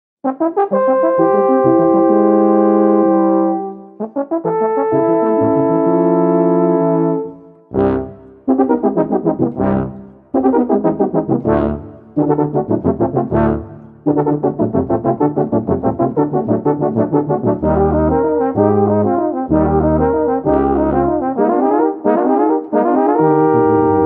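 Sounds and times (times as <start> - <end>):
tuba quartet playing: 0.2 - 24.0.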